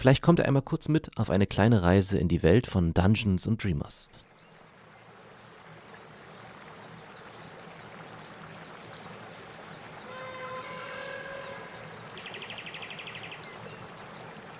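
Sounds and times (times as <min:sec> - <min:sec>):
speech: 0:00.0 - 0:04.2
river water flowing: 0:04.2 - 0:14.5
faint whistling calls: 0:10.0 - 0:14.0.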